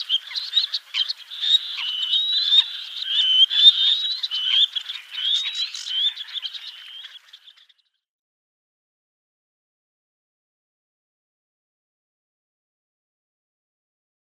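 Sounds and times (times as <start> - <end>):
black-necked grebe calling with high rising whistled notes: 0.0 - 7.9.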